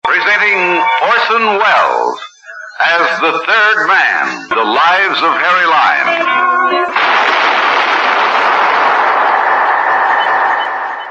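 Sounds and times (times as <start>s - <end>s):
speech: 0.4s - 0.7s, 1.3s - 7.3s
gunshot in a radio drama: 7.0s - 10.8s.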